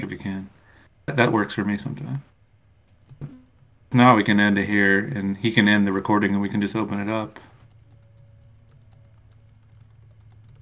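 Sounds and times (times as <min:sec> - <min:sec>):
steady low electrical hum: 0:00.0 - 0:10.6
speech: 0:00.1 - 0:02.3, 0:03.2 - 0:07.5
typing on a computer keyboard: 0:07.6 - 0:10.6.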